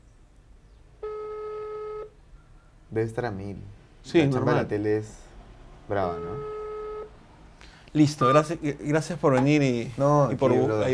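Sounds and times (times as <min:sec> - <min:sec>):
faint hiss: 0:00.0 - 0:10.9
ringback tone of an unanswered phone call: 0:01.0 - 0:02.1, 0:06.2 - 0:07.1
speech: 0:02.9 - 0:05.3, 0:05.9 - 0:06.6, 0:07.9 - 0:10.9.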